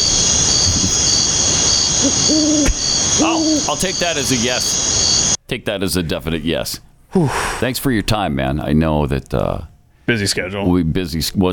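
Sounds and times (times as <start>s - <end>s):
owl hooting: 0.0s - 5.4s
steady high insect-like drone: 0.0s - 5.4s
speech: 2.0s - 4.9s, 5.5s - 11.5s.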